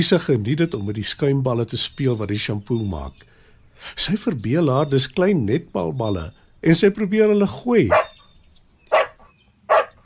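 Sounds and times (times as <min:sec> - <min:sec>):
speech: 0:00.0 - 0:08.1
dog barking in short sharp bursts: 0:07.9 - 0:08.2, 0:08.9 - 0:10.0.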